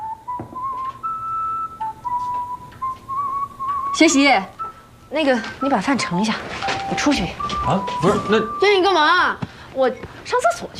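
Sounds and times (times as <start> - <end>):
person whistling a tune: 0.0 - 4.9, 6.6 - 8.9
speech: 4.0 - 10.7.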